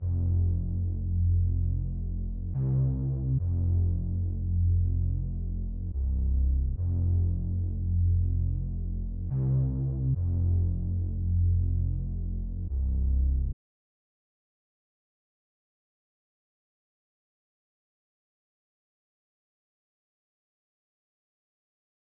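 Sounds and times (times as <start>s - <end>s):
bass melody loop in F minor at 142 BPM: 0.0s - 12.8s.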